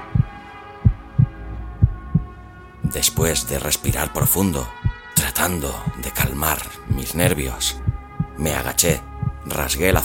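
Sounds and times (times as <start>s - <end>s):
deep heavy pounding heartbeat: 0.0s - 2.3s, 3.9s - 5.0s, 5.8s - 8.4s, 9.0s - 9.4s
low hum: 0.0s - 5.0s, 5.6s - 10.0s
speech: 2.9s - 4.8s, 5.4s - 7.8s, 8.4s - 10.0s.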